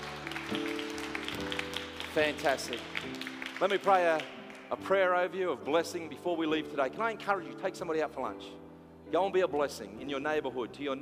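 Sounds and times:
audience clapping hands: 0:00.0 - 0:05.1
speech: 0:02.2 - 0:10.9.

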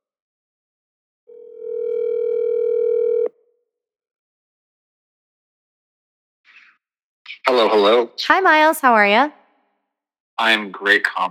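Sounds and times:
telephone dial tone while placing a call: 0:01.3 - 0:03.3
speech: 0:07.5 - 0:09.4, 0:10.4 - 0:11.3.

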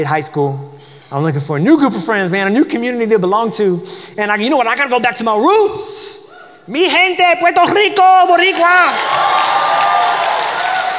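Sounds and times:
speech: 0:00.0 - 0:06.1, 0:06.7 - 0:09.8
crowd clapping: 0:08.8 - 0:10.9.

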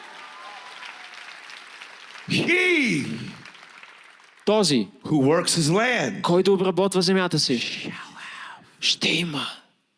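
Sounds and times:
audience clapping hands: 0:00.0 - 0:05.0
speech: 0:02.3 - 0:03.3, 0:04.5 - 0:08.1, 0:08.8 - 0:09.6.

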